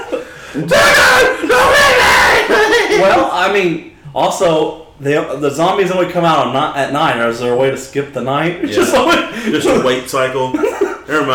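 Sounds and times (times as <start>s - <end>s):
laughter: 0.0s - 3.3s, 8.6s - 11.3s
speech: 0.5s - 1.7s, 2.5s - 11.3s
two people screaming together: 0.5s - 3.4s.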